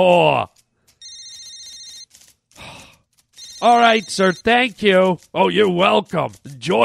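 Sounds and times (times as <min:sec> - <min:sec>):
speech: 0:00.0 - 0:00.5, 0:03.6 - 0:06.8
loud rustling clatter: 0:00.5 - 0:06.6
telephone ringing with an electronic trill: 0:00.9 - 0:02.2, 0:03.3 - 0:04.8.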